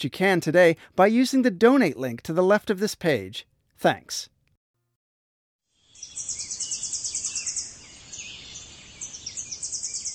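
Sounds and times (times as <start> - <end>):
speech: 0.0 - 4.3
Tennessee warbler singing staccato chips and a dry trill: 5.8 - 10.1.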